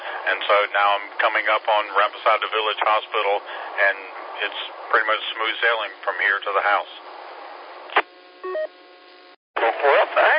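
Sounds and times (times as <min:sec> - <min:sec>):
speech: 0:00.2 - 0:07.1, 0:09.6 - 0:10.3
paired electronic phone tones over a radio channel: 0:08.4 - 0:08.7
crackly voice on the line: 0:09.6 - 0:10.3.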